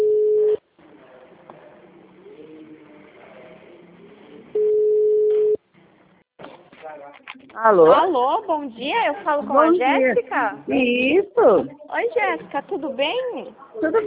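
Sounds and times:
telephone ringback tone beeps while dialing a call: 0.0 - 0.6, 4.6 - 5.6
speech: 7.6 - 14.0.

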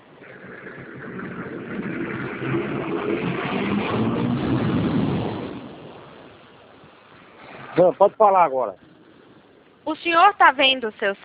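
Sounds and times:
bus with heavy engine passing by on the street: 0.2 - 5.7
speech: 3.8 - 4.7, 7.8 - 8.9, 9.8 - 11.2.

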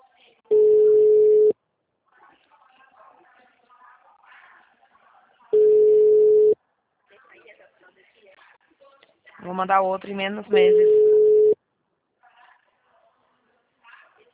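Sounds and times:
telephone ringback tone while calling someone again: 0.5 - 1.5, 5.6 - 6.6, 10.6 - 11.6
speech: 9.6 - 11.0.

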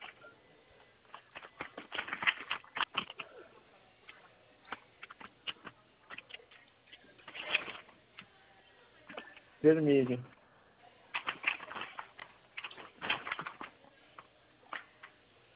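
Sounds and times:
paper envelope crinkling and crackling: 1.0 - 3.5, 4.1 - 8.3, 11.1 - 15.1
speech: 9.6 - 10.4.

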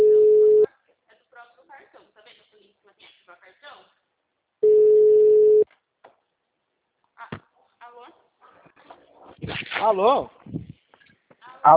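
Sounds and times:
telephone tone after a dropped phone call: 0.0 - 0.7, 4.6 - 5.6
speech: 9.8 - 10.6.

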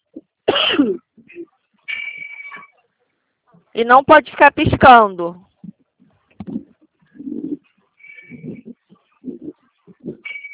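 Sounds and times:
person clearing throat with a rough drawn-out rasp: 0.5 - 1.5
person coughing harshly: 0.5 - 1.5
speech: 3.8 - 5.5.

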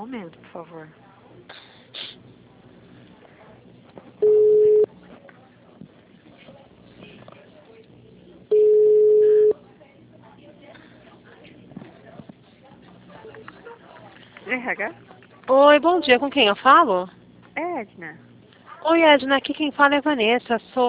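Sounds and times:
speech: 0.0 - 1.6, 14.6 - 17.2, 17.8 - 20.8
low noise: 0.0 - 20.8
telephone line beeps while placing a call: 4.2 - 4.9, 8.5 - 9.6.

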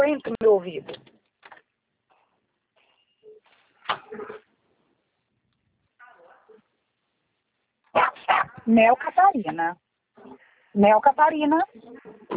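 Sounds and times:
speech: 0.1 - 1.2, 8.0 - 12.3
dog barking: 7.9 - 8.6.

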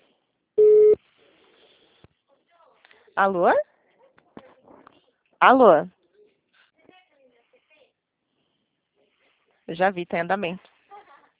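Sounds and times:
telephone busy signal beep while calling an agency: 0.6 - 1.0
speech: 3.2 - 3.7, 5.4 - 6.0, 9.7 - 10.7.

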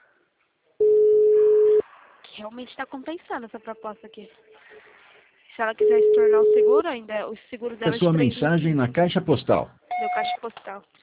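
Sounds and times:
telephone ringing tone while calling someone: 0.8 - 1.8, 5.8 - 6.8, 9.9 - 10.4
speech: 2.4 - 4.8, 5.6 - 11.0.

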